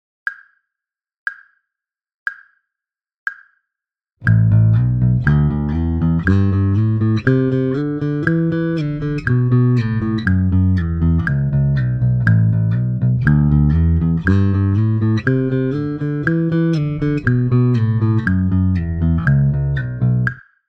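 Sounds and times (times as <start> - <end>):
bass slide exercise: 4.2 - 20.4.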